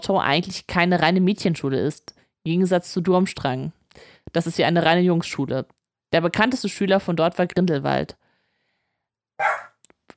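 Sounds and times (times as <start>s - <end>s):
speech: 0.1s - 8.2s
dog barking: 9.4s - 9.8s
short yip-like sound: 9.4s - 9.8s.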